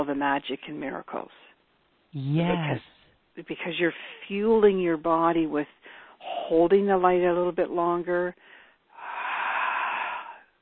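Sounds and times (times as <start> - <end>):
speech: 0.0 - 8.5
long breathy exhale during a guided breathing exercise: 8.5 - 10.5.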